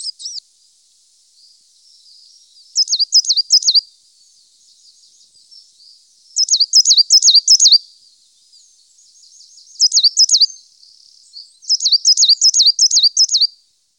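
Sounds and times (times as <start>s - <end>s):
coal tit singing: 2.2s - 3.8s, 5.2s - 7.8s, 9.1s - 13.5s.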